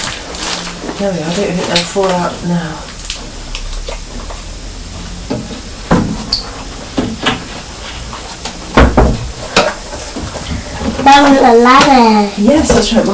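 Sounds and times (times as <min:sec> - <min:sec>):
speech: 0:01.0 - 0:02.9, 0:11.1 - 0:13.0
wooden cupboard door knocks as dried fruit is put on a kitchen shelf: 0:08.7 - 0:09.4.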